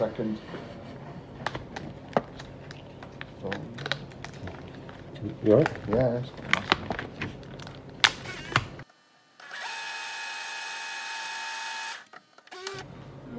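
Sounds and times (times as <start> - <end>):
speech: 0.0 - 0.8, 3.4 - 3.9, 5.2 - 6.6
power drill driving in screws while reassembling a laminator: 8.2 - 12.9.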